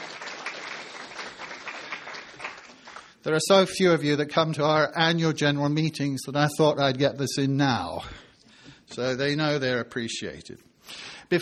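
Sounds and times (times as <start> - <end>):
audience applause of many hands clapping: 0.0 - 3.2
speech: 3.2 - 8.2, 8.9 - 11.4.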